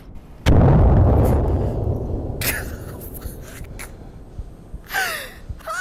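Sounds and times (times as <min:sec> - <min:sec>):
grenade explosion in a video game: 0:00.4 - 0:04.8
person gasping: 0:04.8 - 0:05.6.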